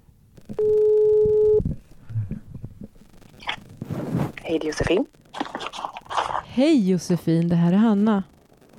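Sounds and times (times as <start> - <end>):
loud telephone ringback tone while placing a call: 0.6 - 1.6
speech: 4.5 - 5.2, 6.6 - 8.3.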